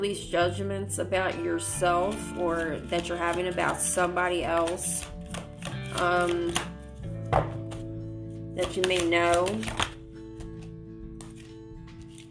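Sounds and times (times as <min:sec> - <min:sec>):
speech: 0:00.0 - 0:05.2, 0:06.0 - 0:06.7, 0:08.6 - 0:09.9
tarot cards being shuffled: 0:01.8 - 0:07.9, 0:08.5 - 0:12.2.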